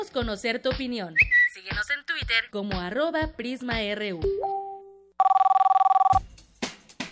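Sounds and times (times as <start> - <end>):
speech: 0.1 - 4.5
telephone bell ringing: 5.2 - 6.2.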